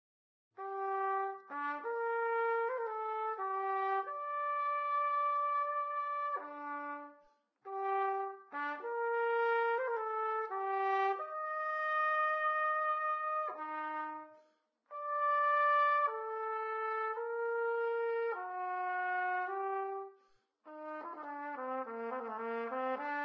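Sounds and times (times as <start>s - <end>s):
trumpet playing: 0.6s - 23.2s.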